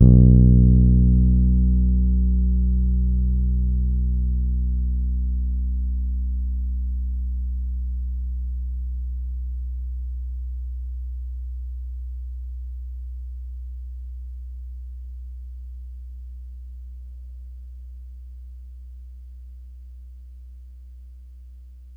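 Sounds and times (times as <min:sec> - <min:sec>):
Pedulla Thunderbass bass guitar B2 note played hard: 0:00.0 - 0:10.2.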